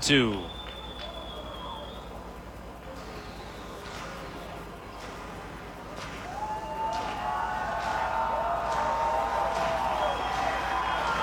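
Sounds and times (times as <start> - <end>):
speech: 0.0 - 0.6
large ballpark crowd cheering: 0.0 - 2.3, 6.1 - 11.2.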